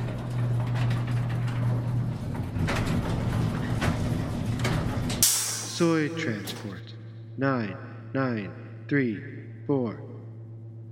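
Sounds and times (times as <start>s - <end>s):
heavy doors sliding open with hissing and clunking: 0.0s - 6.8s
steady low mechanical hum: 0.0s - 10.9s
speech: 5.8s - 10.1s.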